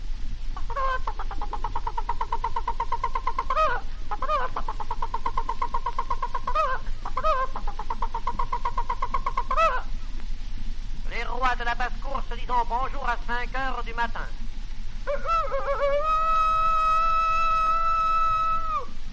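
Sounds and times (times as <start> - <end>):
steady low hum: 0.0 - 19.1
hen cackling after laying an egg: 0.6 - 10.0, 15.0 - 19.0
speech: 11.6 - 14.4.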